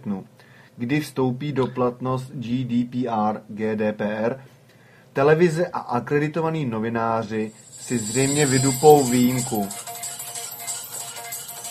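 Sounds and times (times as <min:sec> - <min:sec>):
speech: 0:00.0 - 0:04.6, 0:05.2 - 0:09.9
constant hiss of noise: 0:00.0 - 0:11.6
mobile phone SMS text message alert tone: 0:07.8 - 0:10.4.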